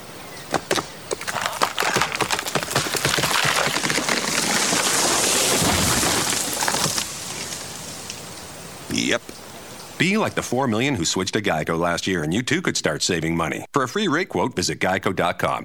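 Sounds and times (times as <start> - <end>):
tree cracking and falling through branches in a forest: 0.5 - 8.6
speech: 10.0 - 15.6.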